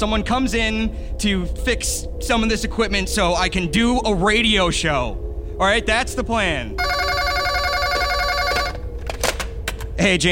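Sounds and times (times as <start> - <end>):
speech: 0.0 - 7.3, 10.0 - 10.3
telephone ringing with electronic trill in a radio studio: 6.8 - 8.9.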